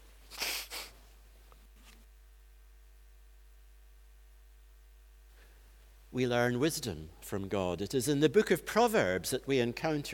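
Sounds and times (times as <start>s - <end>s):
person blowing their nose: 0.3s - 1.0s
speech: 6.2s - 10.1s.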